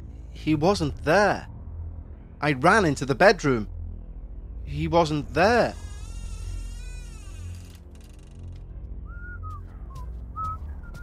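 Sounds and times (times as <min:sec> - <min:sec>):
low rumble: 0:00.0 - 0:11.0
speech: 0:00.4 - 0:01.5, 0:02.4 - 0:03.7, 0:04.7 - 0:05.8
person whistling a tune: 0:09.1 - 0:11.0.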